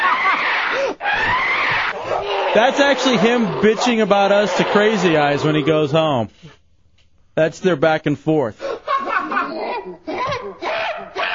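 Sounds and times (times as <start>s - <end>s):
laughter: 0.0s - 0.8s, 8.6s - 11.3s
shrill screaming from another room: 0.0s - 5.9s, 10.5s - 11.3s
speech: 2.6s - 6.6s, 7.4s - 8.7s.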